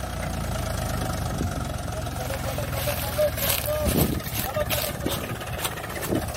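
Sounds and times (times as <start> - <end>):
rumbling clatter: 0.0 - 6.3
tractor engine pulling trolley in high gear: 0.0 - 6.3
voices: 1.4 - 6.3.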